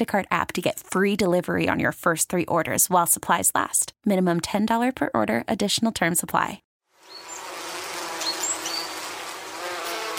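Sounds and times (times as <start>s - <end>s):
speech: 0.0s - 7.2s
many bees buzzing: 7.0s - 10.1s.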